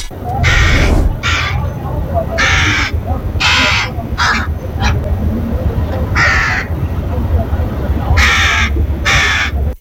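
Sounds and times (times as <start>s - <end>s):
low steady talk: 0.1s - 9.7s
sick crow giving harsh hoarse caws: 0.5s - 1.6s, 2.4s - 4.5s, 6.1s - 6.7s, 8.2s - 9.5s.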